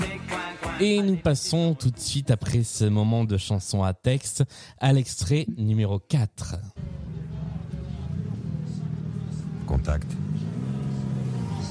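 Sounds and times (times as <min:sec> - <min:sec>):
speech: 0:00.8 - 0:07.0, 0:09.7 - 0:10.5
car engine idling and revving: 0:06.8 - 0:11.6.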